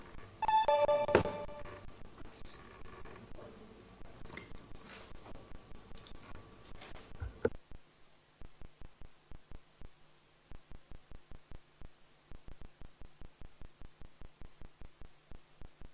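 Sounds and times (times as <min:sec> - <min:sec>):
short electronic multi-tone signal marking the start of a council vote: 0:00.4 - 0:01.8.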